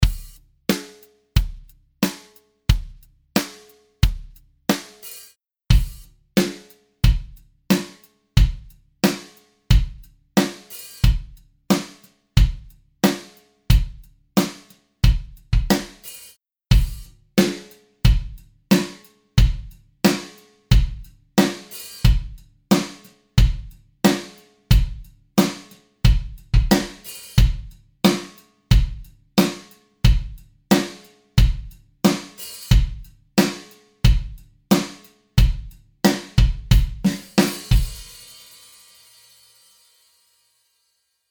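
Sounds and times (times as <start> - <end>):
dry drums: 0.0 - 39.4.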